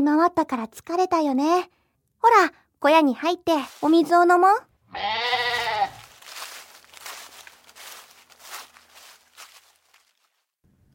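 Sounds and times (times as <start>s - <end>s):
speech: 0.0s - 5.7s
rustling on the ground: 3.5s - 4.3s, 5.0s - 10.6s
soft shuffling footsteps on the ground: 3.5s - 4.4s, 5.4s - 10.5s
old goat bleating: 4.9s - 6.1s.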